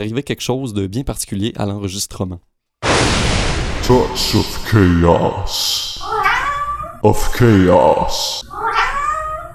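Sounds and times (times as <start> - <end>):
speech: 0.0 - 3.2, 3.9 - 6.1, 7.0 - 8.6
cat meowing in response to calls: 6.0 - 7.0, 8.4 - 9.5.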